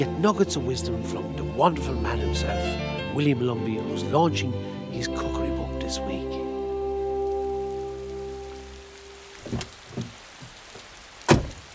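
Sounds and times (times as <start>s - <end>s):
speech: 0.0s - 6.4s
steady rain outdoors at a vocational school entrance: 6.2s - 11.7s
sharp knocks: 11.3s - 11.6s.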